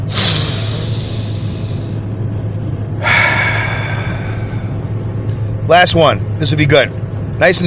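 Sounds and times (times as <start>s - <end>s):
deep breathing during a guided deep-breathing exercise: 0.0s - 2.2s, 2.8s - 5.6s
steady low hum: 0.0s - 7.6s
speech: 5.7s - 7.6s.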